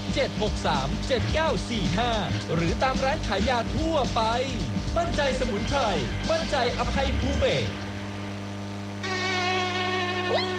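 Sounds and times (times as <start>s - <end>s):
speech: 0.2s - 7.8s, 10.3s - 10.5s
mosquito buzzing: 4.8s - 10.5s.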